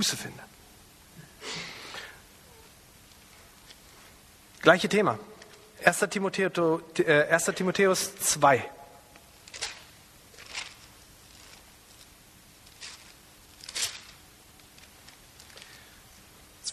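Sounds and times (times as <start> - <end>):
speech: 0.0 - 0.6, 4.6 - 8.8
thin pages of a Bible being turned: 9.4 - 15.8.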